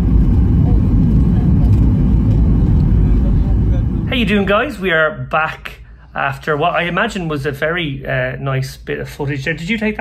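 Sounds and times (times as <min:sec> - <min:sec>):
airplane landing in Vegas after a flight from Heathrow: 0:00.0 - 0:04.5
speech: 0:04.2 - 0:09.9.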